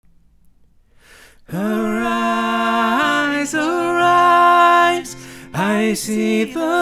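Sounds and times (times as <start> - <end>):
tenor voice: 1.5 - 6.7.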